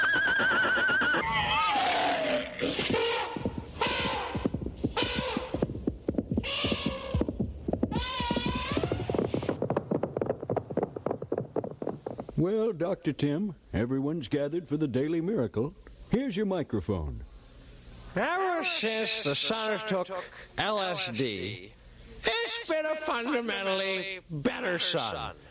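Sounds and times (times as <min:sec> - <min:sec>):
horses neighing and whinnying: 0:00.0 - 0:09.6
rhythmic clattering thumps: 0:02.6 - 0:12.4
speech: 0:12.4 - 0:17.3, 0:18.1 - 0:25.4.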